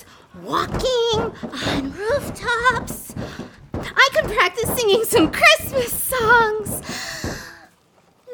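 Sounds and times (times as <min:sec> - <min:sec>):
speech: 0:00.3 - 0:02.9, 0:04.3 - 0:06.5
rough breathy burst: 0:06.8 - 0:07.7.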